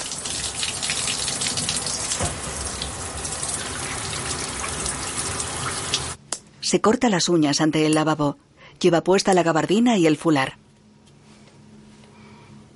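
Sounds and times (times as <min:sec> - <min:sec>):
shower water running over a woman: 0:00.0 - 0:06.2
speech: 0:06.7 - 0:10.6.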